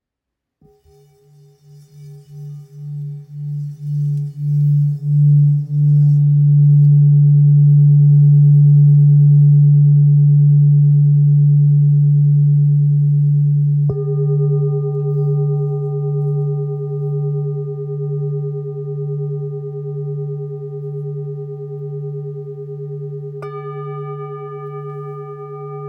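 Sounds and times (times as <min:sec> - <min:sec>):
antique singing bowl in G sharp: 0:00.6 - 0:25.8.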